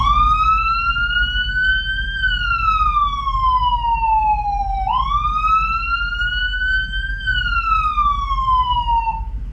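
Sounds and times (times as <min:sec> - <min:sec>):
ambulance siren slow wail open-road warning tone: 0:00.0 - 0:09.5
low rumble: 0:00.0 - 0:09.5.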